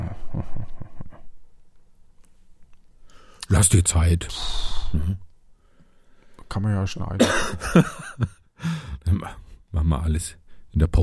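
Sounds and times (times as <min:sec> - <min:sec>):
speech: 0:03.5 - 0:05.3, 0:06.5 - 0:11.0
person giving short stifled half-suppressed coughs: 0:07.2 - 0:08.0
laughter: 0:07.2 - 0:08.3.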